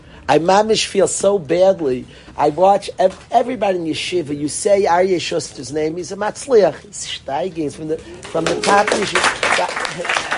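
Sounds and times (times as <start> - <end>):
speech: 0.3 - 10.3
live audience cheering: 8.2 - 10.3
people clapping: 8.2 - 10.3.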